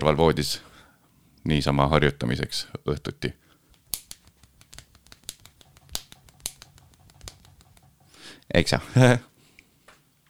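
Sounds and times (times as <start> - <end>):
speech: 0.0 - 0.7, 1.4 - 3.4, 8.5 - 9.3
popping clicks made with mouth air: 3.6 - 8.2
breathy hiss: 8.0 - 10.0.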